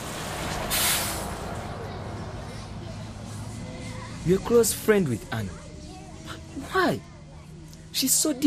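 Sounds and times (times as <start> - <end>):
bus engine rumble and idling: 0.0 - 8.4
bus air brakes hissing: 0.6 - 1.4
speech: 4.2 - 5.6, 6.6 - 7.1, 8.0 - 8.4.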